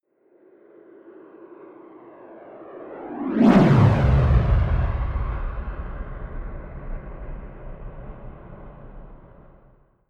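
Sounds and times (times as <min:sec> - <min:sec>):
sidewinder rocket flyby whoosh: 0:03.0 - 0:09.7.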